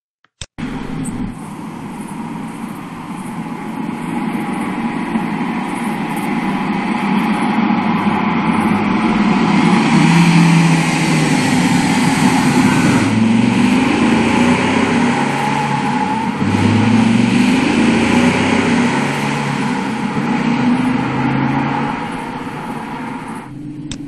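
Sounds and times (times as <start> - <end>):
car engine: 0.6 - 24.0.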